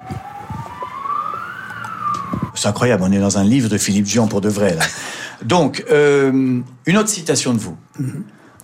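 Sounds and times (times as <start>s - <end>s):
police siren wailing outside: 0.0s - 3.3s
low traffic rumble: 0.0s - 4.6s
speech: 2.6s - 8.4s.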